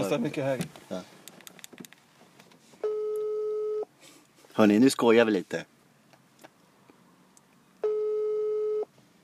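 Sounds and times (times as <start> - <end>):
speech: 0.1 - 1.2, 4.6 - 5.7
telephone ringback tone: 2.8 - 3.9, 7.8 - 8.9.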